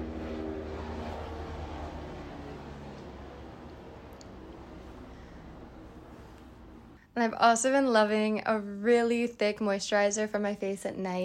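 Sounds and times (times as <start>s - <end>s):
helicopter droning overhead: 0.0s - 7.0s
speech: 7.2s - 11.2s.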